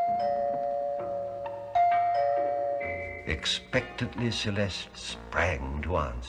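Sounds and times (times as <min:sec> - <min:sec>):
doorbell chiming a short melodic sequence: 0:00.0 - 0:03.7
speech: 0:03.2 - 0:06.2.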